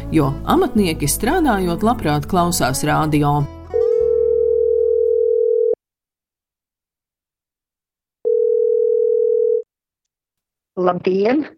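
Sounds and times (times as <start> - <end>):
speech: 0.1 - 3.5, 10.8 - 11.5
telephone ringback tone of an outgoing call: 3.7 - 5.8, 8.3 - 9.6.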